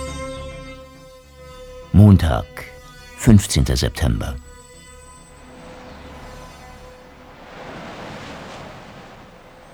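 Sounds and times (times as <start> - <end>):
speech: 2.0 - 4.5
shower running water: 5.3 - 9.7.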